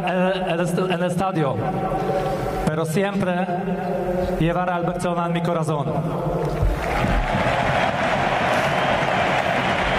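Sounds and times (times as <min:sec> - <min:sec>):
speech: 0:00.0 - 0:07.4
large stadium crowd applauding and cheering: 0:06.6 - 0:09.9.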